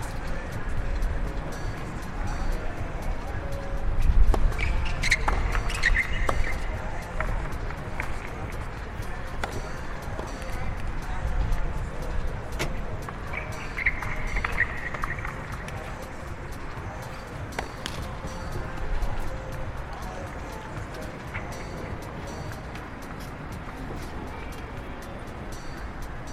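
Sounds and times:
murmur of voices at a tennis tournament: 0.0 - 26.3.

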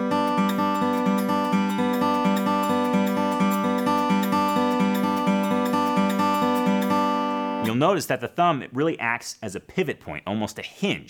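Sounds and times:
acoustic guitar fingerpicked in a forward-backward banjo roll on open strings: 0.0 - 7.8
speech: 7.8 - 11.0.

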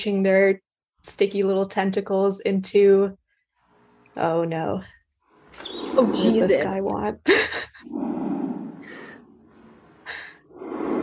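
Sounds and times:
speech: 0.0 - 3.2, 4.2 - 4.9, 5.6 - 8.0
man breathing heavily and rasping: 7.9 - 11.0.

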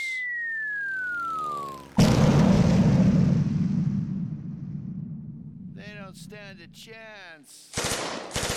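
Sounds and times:
descending whistle of incendiary bombs dropping over a prison building: 0.0 - 2.4
incendiary bomb blast: 2.0 - 6.8
speech: 6.3 - 8.4.

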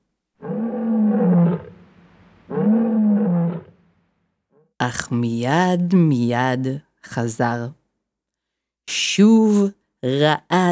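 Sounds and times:
lion roaring: 0.4 - 3.8
speech: 4.8 - 7.8, 9.2 - 10.7.

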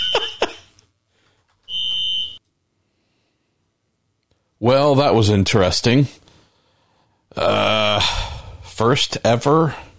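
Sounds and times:
smoke alarm set off by a real fire: 0.0 - 0.6, 1.7 - 2.4
speech: 4.6 - 6.2, 7.4 - 9.9.

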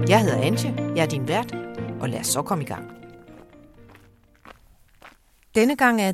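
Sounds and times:
speech: 0.1 - 3.0, 5.5 - 6.1
footsteps climbing down into a chalk quarry: 2.7 - 5.6.

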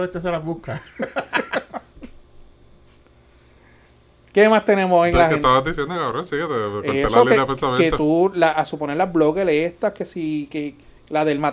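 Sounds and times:
speech: 0.0 - 1.4, 4.4 - 11.5
laughter: 0.7 - 2.1, 5.2 - 7.9
heavy breathing blown into the microphone: 3.2 - 4.1.

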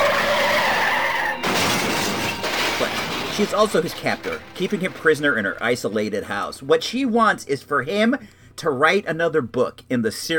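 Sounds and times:
tire screech: 0.0 - 3.0
crash of smashing metal and shattering glass: 0.0 - 6.0
speech: 3.4 - 10.3.

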